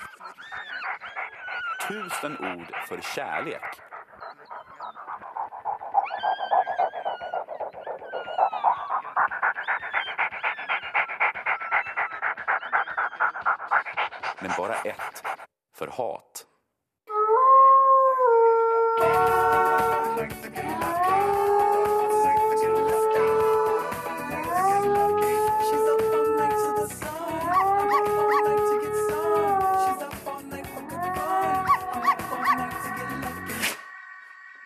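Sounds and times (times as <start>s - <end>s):
dog howling in long wavering cries: 0.0s - 15.4s, 17.1s - 30.1s, 30.8s - 33.6s
dense buzzing experimental sound art backdrop made for dogs: 1.0s - 15.4s
speech: 1.9s - 3.9s, 14.4s - 16.4s.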